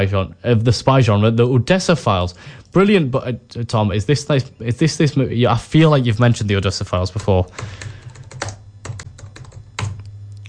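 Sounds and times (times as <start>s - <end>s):
speech: 0.0s - 7.9s
low steady hum: 0.0s - 10.4s
typing on a computer keyboard: 7.6s - 10.1s.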